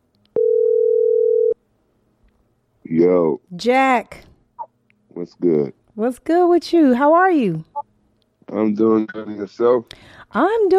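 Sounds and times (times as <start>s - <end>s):
telephone dial tone while placing a call: 0.4s - 1.6s
speech: 2.9s - 4.3s, 5.2s - 7.7s, 8.5s - 10.7s.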